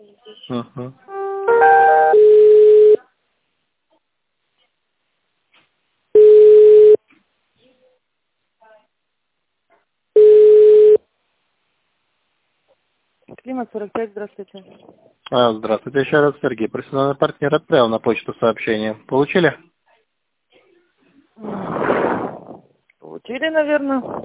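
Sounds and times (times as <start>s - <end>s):
speech: 0.3s - 1.6s, 13.5s - 19.7s, 23.1s - 24.2s
telephone line tone beeps while a call is being transferred: 1.5s - 3.0s, 6.2s - 7.0s, 10.2s - 11.0s.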